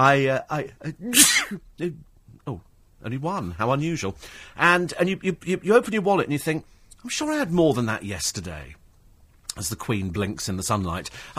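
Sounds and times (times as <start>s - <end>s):
speech: 0.0s - 8.8s, 9.6s - 11.3s
person sneezing: 1.0s - 1.6s.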